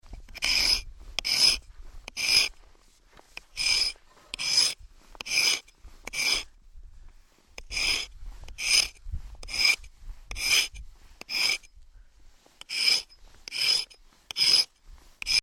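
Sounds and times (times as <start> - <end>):
knife being sharpened: 0.3 - 2.5, 3.4 - 6.5, 7.6 - 11.7, 12.6 - 15.4.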